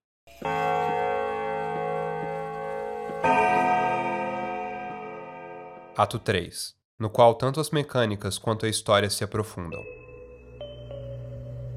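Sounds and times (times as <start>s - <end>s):
bell struck and ringing: 0.3s - 6.0s
speech: 6.0s - 10.0s.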